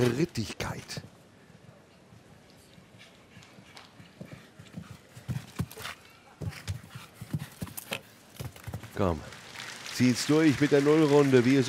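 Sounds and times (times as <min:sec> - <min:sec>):
speech: 0:00.0 - 0:01.1, 0:09.0 - 0:09.3, 0:10.0 - 0:11.6
hoofbeats of a horse cantering across soft show-jumping arena footing: 0:03.0 - 0:08.9
horse hooves galloping in show-jumping arena: 0:03.0 - 0:09.4.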